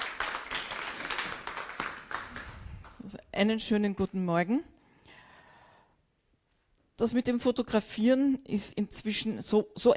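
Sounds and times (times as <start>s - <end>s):
crowd applauding: 0.0s - 3.0s
speech: 3.4s - 4.7s, 7.0s - 9.9s.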